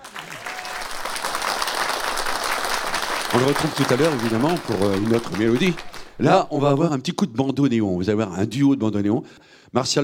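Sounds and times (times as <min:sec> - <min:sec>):
audience applauding an accordionist: 0:00.0 - 0:06.8
speech: 0:03.3 - 0:10.0.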